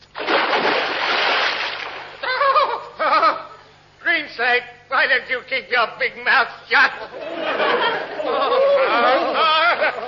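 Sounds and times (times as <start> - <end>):
underground river water gushing up through drilled pillar box base: 0.0 - 2.2
laughter: 2.2 - 3.6, 7.0 - 10.0
speech: 4.4 - 10.0.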